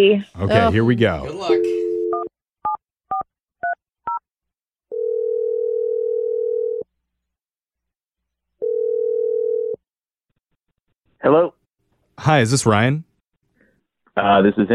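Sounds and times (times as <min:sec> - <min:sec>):
speech: 0:00.0 - 0:01.9, 0:11.2 - 0:11.6, 0:12.2 - 0:13.1, 0:14.2 - 0:14.7
phone ringing on the line: 0:00.5 - 0:02.3, 0:04.9 - 0:06.8, 0:08.6 - 0:09.8.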